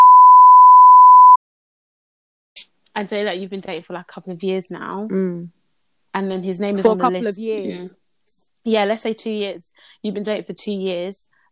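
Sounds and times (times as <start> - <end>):
high-pitched censor bleep: 0.0 - 1.4
speech: 3.0 - 11.3.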